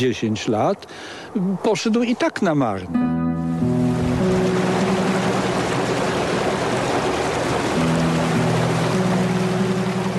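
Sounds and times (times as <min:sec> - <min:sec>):
speech: 0:00.0 - 0:03.5
water rushing over a rebuilt dam on the Krzczonówka stream in Krzczonów: 0:03.8 - 0:10.1.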